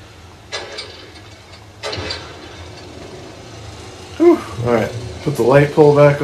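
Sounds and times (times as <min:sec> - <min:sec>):
generator starting up in a video game: 0:00.5 - 0:06.2
speech: 0:04.2 - 0:06.2.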